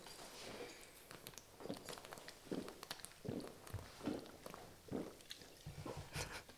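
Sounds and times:
person swallowing water in soft gulps: 1.6s - 6.4s.

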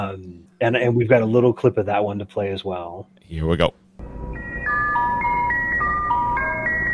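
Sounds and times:
speech: 0.0s - 3.8s
music box melody from a numbers station transmission: 4.4s - 6.9s.

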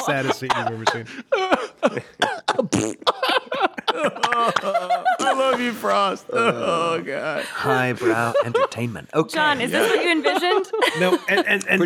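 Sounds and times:
speech: 0.0s - 3.1s, 5.6s - 11.8s
laughter: 0.0s - 11.8s
person acting out a coughing fit with gasps: 0.2s - 3.4s.

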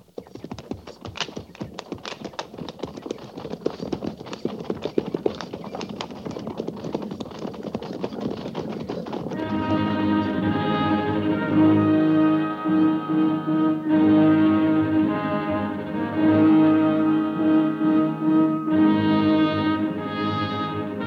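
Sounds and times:
cavalry troop horses trotting: 0.0s - 10.6s
sustained musical tone: 9.4s - 21.0s.

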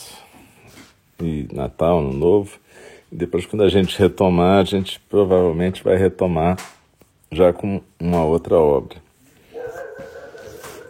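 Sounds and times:
speech: 1.2s - 6.7s, 7.3s - 9.0s
dog barking outdoors in Itororó: 9.5s - 10.8s.

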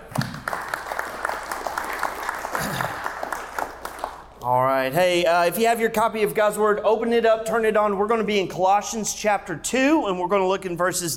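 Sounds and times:
audience clapping: 0.0s - 4.4s
speech: 4.4s - 11.1s.

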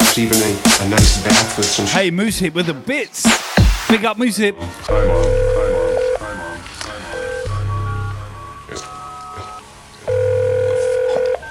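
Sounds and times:
speech: 0.2s - 5.8s
phone dialing tones: 4.9s - 11.5s.

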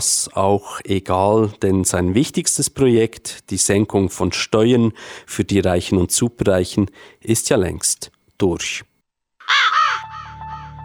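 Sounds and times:
speech: 0.0s - 8.9s
raven cawing: 9.4s - 10.7s.

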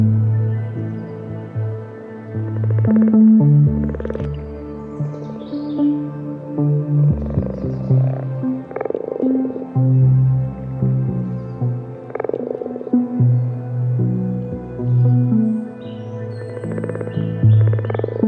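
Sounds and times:
chorus of frogs croaking in a pond during mating season: 0.0s - 18.2s
brighter frog calls from a pond: 2.5s - 6.0s, 7.2s - 9.9s, 11.9s - 13.6s, 14.9s - 18.2s.

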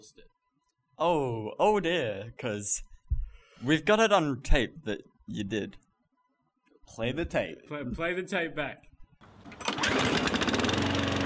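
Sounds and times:
speech: 1.0s - 2.9s, 3.6s - 5.8s, 6.9s - 8.9s
lawnmower engine running: 9.2s - 11.2s.

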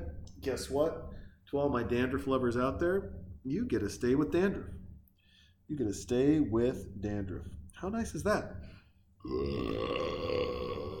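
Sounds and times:
speech: 0.4s - 4.8s, 5.7s - 10.6s
long loud burp: 9.2s - 10.9s.

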